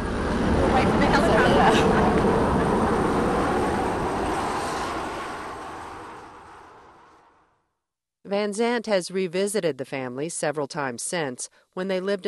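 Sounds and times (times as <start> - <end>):
helicopter passing overhead after a storm: 0.0 - 7.6
speech: 8.4 - 12.2.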